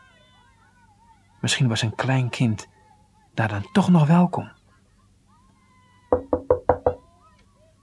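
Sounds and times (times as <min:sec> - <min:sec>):
faint steady hum: 0:00.0 - 0:07.8
speech: 0:01.4 - 0:02.7, 0:03.4 - 0:04.6
sharp knocking on a wooden door: 0:06.1 - 0:07.0.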